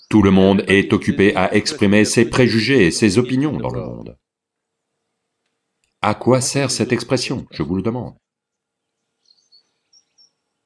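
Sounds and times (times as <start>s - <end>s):
birds chirping: 0.0s - 6.0s, 6.8s - 10.6s
hum: 0.0s - 10.6s
speech: 0.1s - 4.2s, 6.0s - 8.2s.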